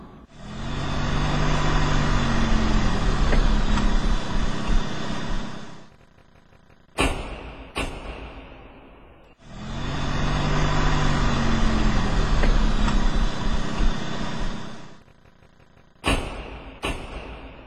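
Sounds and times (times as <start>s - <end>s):
car engine rumbling as it pulls up and stops outside a gate: 0.0s - 7.3s, 8.4s - 17.6s
sharp clunks, possibly car doors: 7.0s - 8.7s, 16.0s - 17.6s.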